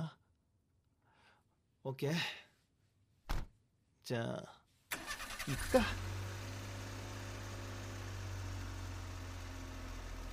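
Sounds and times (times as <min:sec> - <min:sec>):
speech: 0:01.8 - 0:02.4, 0:04.1 - 0:04.6, 0:05.5 - 0:06.1
car engine idling inside the cabin: 0:05.0 - 0:10.3.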